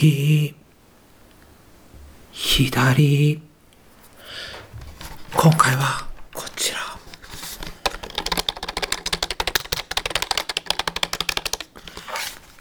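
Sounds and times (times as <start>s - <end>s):
speech: 0.0s - 0.6s, 2.4s - 3.5s, 5.4s - 6.8s
computer keyboard keys being typed: 6.7s - 12.4s.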